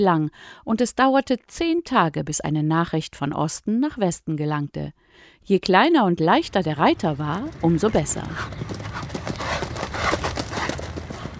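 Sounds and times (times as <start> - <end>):
speech: 0.0 - 9.1
horse hooves trotting in a clip-clop: 6.5 - 11.3.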